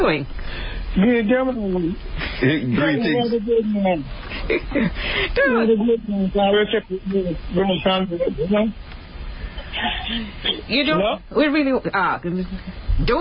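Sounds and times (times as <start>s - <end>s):
speech: 0.0s - 0.4s, 1.0s - 8.8s, 9.8s - 13.1s
steady phone line hiss: 0.0s - 13.1s
voice through a narrow tinny phone line, garbled and distorted: 2.4s - 4.7s, 5.4s - 8.8s, 9.6s - 11.2s.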